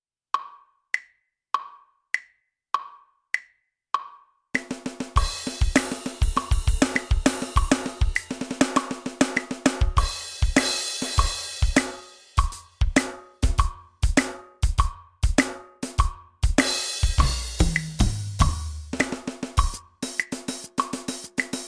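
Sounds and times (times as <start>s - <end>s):
drum solo: 4.6s - 21.6s.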